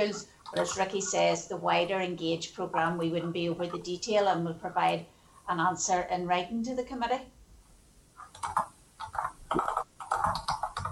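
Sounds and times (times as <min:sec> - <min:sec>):
speech: 0:00.0 - 0:07.3, 0:08.4 - 0:08.7
typing on a computer keyboard: 0:08.2 - 0:10.9.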